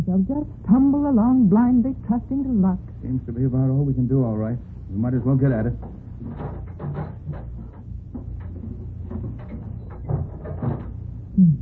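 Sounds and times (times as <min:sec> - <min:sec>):
speech: 0:00.0 - 0:06.6
soundproof door opening with rumbling scrape, knocks and clicks: 0:05.9 - 0:11.1.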